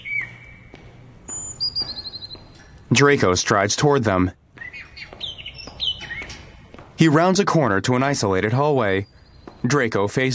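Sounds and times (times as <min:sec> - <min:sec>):
caged bird trilling call: 0:00.0 - 0:00.7, 0:01.3 - 0:02.8, 0:04.6 - 0:06.6
caged birds chirping in orb-shaped cages in a castle corridor: 0:00.0 - 0:03.6, 0:04.5 - 0:07.1, 0:08.2 - 0:10.3
speech: 0:02.9 - 0:04.4, 0:07.0 - 0:10.3.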